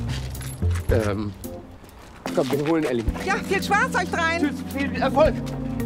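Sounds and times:
keys jangling as they are handed over: 0:00.1 - 0:01.1
speech: 0:00.9 - 0:01.5, 0:02.4 - 0:05.7.

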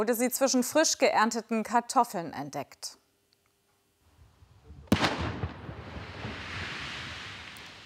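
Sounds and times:
speech: 0:00.0 - 0:03.0
American WWII fragmentation bomb detonated in a potato field: 0:04.6 - 0:07.8.

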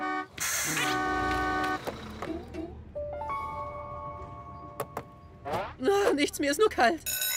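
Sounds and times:
arriving bus horn tooting: 0:00.0 - 0:02.8
arriving bus engine rushing: 0:00.0 - 0:07.0
bus brakes hissing: 0:00.3 - 0:02.8
speech: 0:05.8 - 0:07.2.

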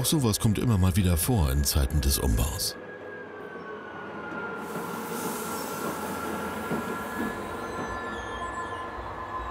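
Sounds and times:
speech: 0:00.0 - 0:02.8
old shunting locomotive wheels squealing: 0:04.4 - 0:09.5.

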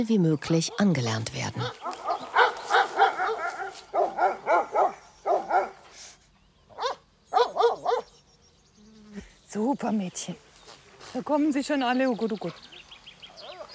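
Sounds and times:
speech: 0:00.0 - 0:01.9, 0:09.6 - 0:10.5, 0:11.1 - 0:12.7
livestock guardian dogs barking: 0:00.6 - 0:05.9, 0:06.7 - 0:08.2.

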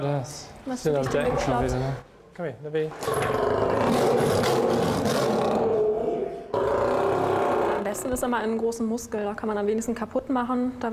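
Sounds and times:
speech: 0:00.0 - 0:05.5, 0:08.0 - 0:10.9
angry male lion roaring in a zoo lion house before vaccination: 0:03.3 - 0:07.8.

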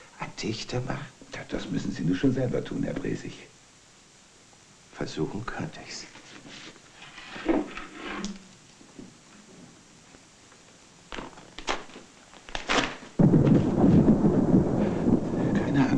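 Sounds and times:
speech: 0:00.4 - 0:03.6, 0:05.0 - 0:06.6
rolling thunder: 0:13.2 - 0:15.9
steady roar of storm noise: 0:13.2 - 0:15.9.

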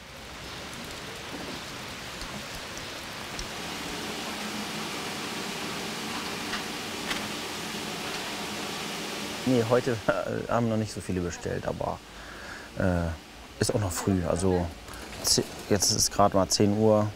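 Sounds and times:
sharper raindrop impacts ticking: 0:00.0 - 0:08.8
steady outdoor rain hiss: 0:00.0 - 0:17.1
speech: 0:09.5 - 0:12.2, 0:12.8 - 0:17.1.

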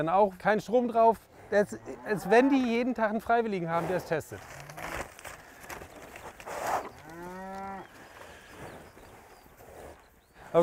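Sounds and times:
speech: 0:00.0 - 0:04.6
cattle mooing on a large island farm: 0:01.5 - 0:03.0, 0:06.8 - 0:08.0.

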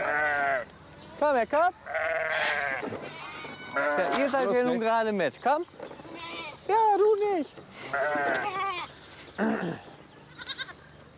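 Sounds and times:
goats bleating: 0:00.0 - 0:00.7, 0:01.8 - 0:04.8, 0:06.0 - 0:06.8, 0:07.8 - 0:10.8
speech: 0:01.2 - 0:01.9, 0:03.8 - 0:05.8, 0:06.7 - 0:08.6, 0:09.4 - 0:09.9.

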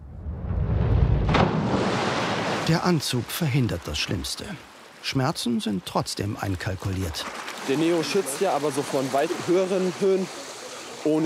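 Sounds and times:
rushing spray of splashing water: 0:01.2 - 0:11.2
speech: 0:02.7 - 0:10.4, 0:11.0 - 0:11.2.

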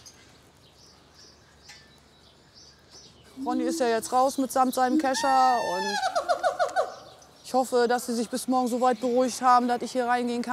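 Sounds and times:
soft steady hiss: 0:00.0 - 0:10.5
faint high chirps from wary macaws: 0:03.3 - 0:07.4
speech: 0:03.4 - 0:06.4, 0:07.5 - 0:10.5.

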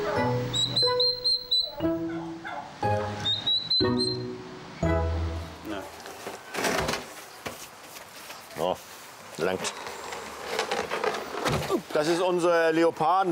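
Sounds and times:
turkey chicks peeping: 0:00.0 - 0:04.4
rustling and clattering noise: 0:05.9 - 0:12.2
speech: 0:09.4 - 0:09.8, 0:12.0 - 0:13.2.

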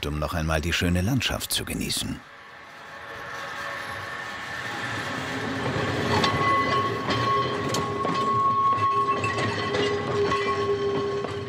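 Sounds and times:
speech: 0:00.0 - 0:02.4
historic tram rolling slowly downhill on rails: 0:00.0 - 0:11.4
tram wheels clicking and squealing over rail joints: 0:02.5 - 0:11.4.

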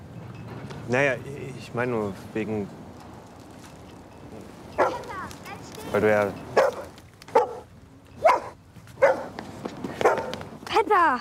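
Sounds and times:
speech: 0:00.9 - 0:02.8, 0:05.9 - 0:06.5, 0:11.0 - 0:11.2
dog barking: 0:04.8 - 0:05.1, 0:06.6 - 0:09.4, 0:10.0 - 0:10.4.

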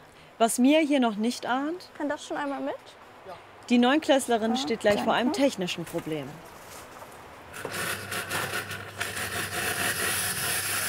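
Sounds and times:
speech: 0:00.4 - 0:06.5, 0:07.6 - 0:08.0
coffee machine hissing steam: 0:07.6 - 0:10.8.

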